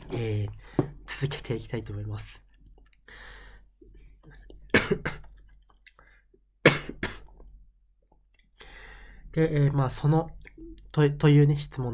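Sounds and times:
speech: 0.1s - 2.4s, 9.3s - 11.9s
person coughing harshly close to the mic: 4.7s - 5.3s, 6.7s - 7.3s.

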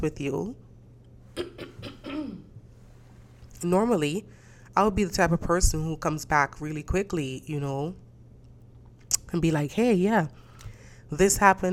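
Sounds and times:
speech: 0.0s - 0.6s, 3.6s - 8.0s, 9.3s - 10.4s, 11.1s - 11.7s
quiet hum: 0.0s - 11.7s
man with a crackly hoarse voice clearing his throat: 1.4s - 2.5s.

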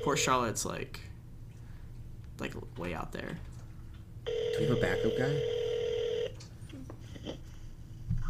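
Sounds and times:
speech: 0.0s - 1.1s, 2.4s - 3.5s, 4.2s - 5.6s
steady electronic phone tone: 4.3s - 6.4s.

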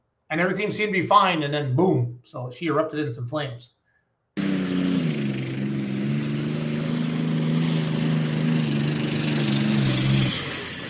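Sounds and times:
speech: 0.3s - 3.8s
turbocharged pulling-tractor engine roaring under load: 4.4s - 10.8s.

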